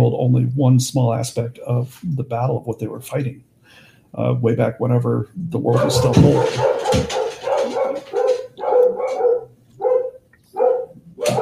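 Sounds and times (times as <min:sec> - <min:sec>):
speech: 0:00.1 - 0:07.3
dogs barking upstairs at someone outside: 0:05.7 - 0:11.3.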